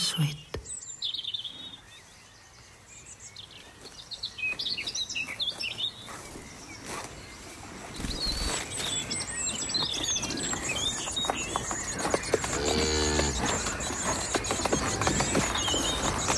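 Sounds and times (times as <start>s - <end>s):
birds chirping: 0.0s - 16.3s
speech: 0.1s - 0.5s
cattle hoofbeats clattering along a hard road: 9.3s - 16.3s
cow mooing: 12.6s - 13.4s.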